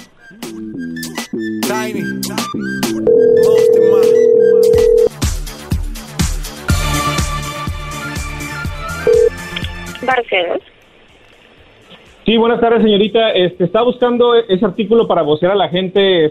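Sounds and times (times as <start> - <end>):
rhythmic music: 0.0 - 14.0
speech: 0.3 - 3.6, 10.2 - 10.7, 12.3 - 16.2
telephone tones as a number is dialed: 3.1 - 5.1, 9.1 - 9.4.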